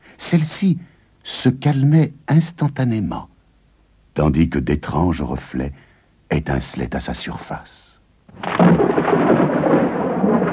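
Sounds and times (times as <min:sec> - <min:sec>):
speech: 0:00.3 - 0:03.3, 0:04.2 - 0:09.3
rain-like noise of a thunderstorm: 0:08.3 - 0:10.5
rolling thunder of a close thunderstorm: 0:08.3 - 0:10.5.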